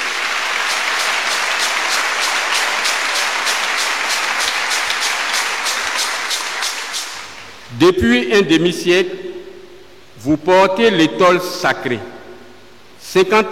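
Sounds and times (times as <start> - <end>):
congregation applauding at a priest's fifty-year jubilee celebration: 0.0 - 7.7
speech: 7.8 - 9.3, 10.2 - 12.2, 13.1 - 13.5.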